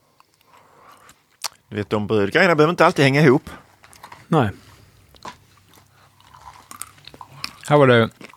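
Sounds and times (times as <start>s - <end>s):
person chewing a large crunchy nut snack during a tasting: 0.2s - 1.6s, 4.8s - 8.3s
speech: 1.7s - 3.6s, 4.3s - 4.6s, 7.7s - 8.3s.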